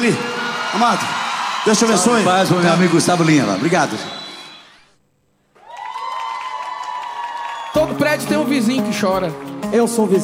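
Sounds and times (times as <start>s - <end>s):
speech: 0.0s - 4.2s, 7.8s - 10.2s
cheering and whistles: 0.0s - 5.0s, 5.6s - 8.0s
crowd applauding: 0.0s - 10.2s.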